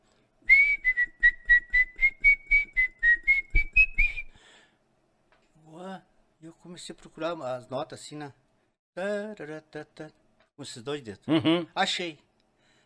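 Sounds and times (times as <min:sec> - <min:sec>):
person whistling a folk melody: 0:00.5 - 0:04.4
speech: 0:06.8 - 0:08.4, 0:09.0 - 0:12.3.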